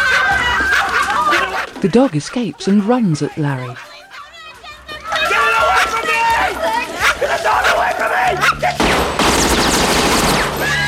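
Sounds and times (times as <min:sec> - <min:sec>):
laughter: 0:00.0 - 0:08.8
speech: 0:01.8 - 0:03.9
gun going off accidentally in loud harsh bursts: 0:08.8 - 0:10.8.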